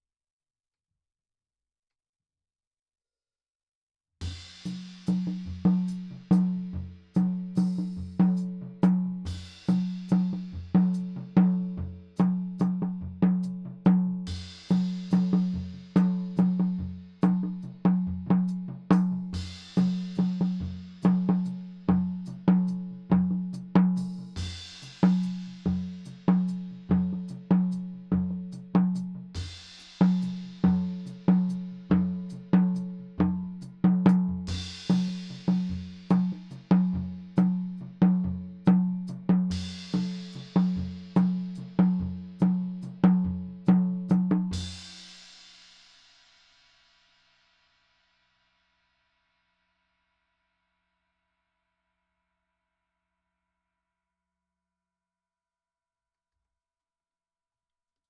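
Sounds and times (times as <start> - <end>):
high tom drum: 4.2 - 45.8.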